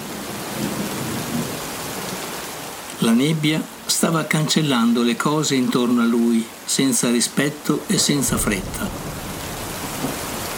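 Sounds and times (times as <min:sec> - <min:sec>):
steady rainfall: 0:00.0 - 0:10.5
speech: 0:03.0 - 0:09.2
low thunder rolling: 0:08.1 - 0:10.5.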